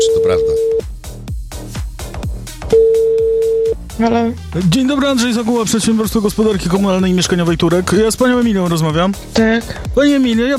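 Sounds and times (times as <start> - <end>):
telephone tone while placing a call: 0.0 - 0.8, 2.7 - 3.8
speech: 0.0 - 0.9, 4.0 - 10.5
rhythmic pulsing beat: 0.0 - 10.5.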